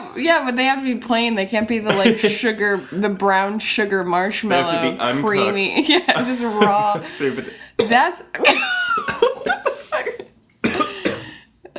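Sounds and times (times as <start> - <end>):
speech: 0.2 - 9.3
laughter: 1.8 - 2.8, 4.5 - 7.5
person coughing and choking on food caught in the throat: 1.9 - 2.9, 7.8 - 9.8, 10.6 - 11.4.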